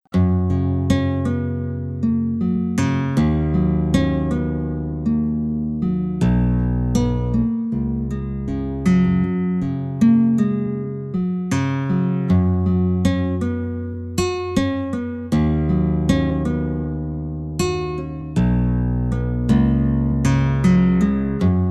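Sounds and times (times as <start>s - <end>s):
Hawaiian guitar tuned to 432 Hz: 0.1s - 21.6s.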